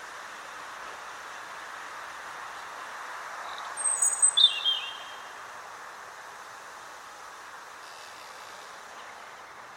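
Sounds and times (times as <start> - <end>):
steady background noise: 0.0 - 9.7
European robin Erithacus rubecula singing whistled phrase: 3.4 - 5.3.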